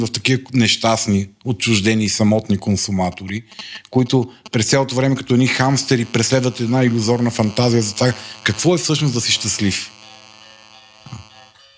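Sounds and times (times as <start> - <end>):
speech: 0.0 - 10.0
mobile phone buzzing: 4.3 - 11.7.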